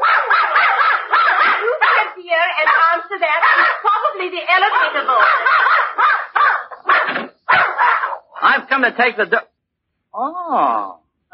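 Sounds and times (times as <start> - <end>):
dog barking with sharp high yappy barks: 0.0 - 8.4
speech: 8.8 - 9.5.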